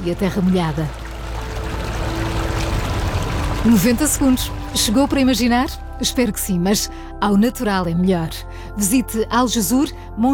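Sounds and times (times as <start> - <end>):
speech: 0.0 - 1.0, 3.6 - 10.3
running water: 0.0 - 7.2.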